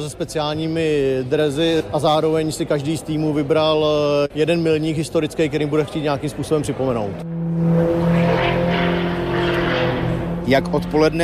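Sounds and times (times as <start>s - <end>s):
speech: 0.0s - 8.2s, 10.5s - 11.2s
sports airplane propeller drone flying aerobatics over an airfield in Letňany: 7.2s - 11.2s.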